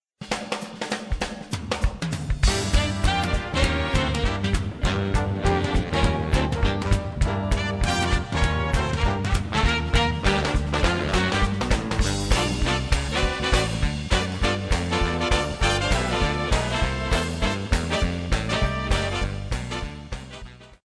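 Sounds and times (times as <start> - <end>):
swing music: 0.2 - 20.8.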